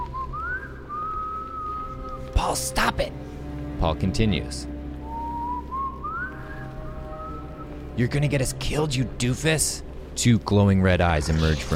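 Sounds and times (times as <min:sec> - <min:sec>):
young boy whistling: 0:00.0 - 0:02.2, 0:05.0 - 0:07.7
speech: 0:02.4 - 0:04.7, 0:08.0 - 0:11.7.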